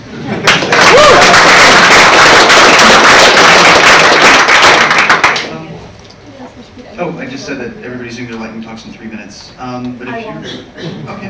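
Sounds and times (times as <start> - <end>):
audience applause after short lightning talks at a tech gathering: 0.4 - 5.6
speech: 7.9 - 11.2.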